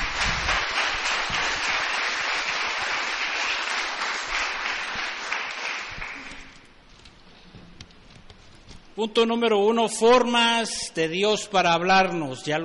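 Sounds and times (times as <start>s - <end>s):
large group clapping: 0.0s - 6.7s
speech: 9.0s - 12.6s.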